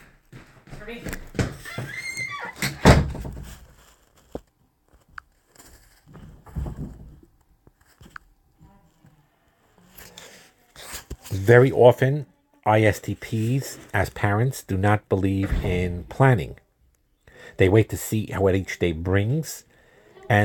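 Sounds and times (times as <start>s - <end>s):
speech: 0.8s - 1.7s, 11.4s - 16.6s, 17.6s - 19.7s, 20.3s - 20.4s
door being pushed shut with rattling and scraping: 2.5s - 3.4s, 15.4s - 16.2s.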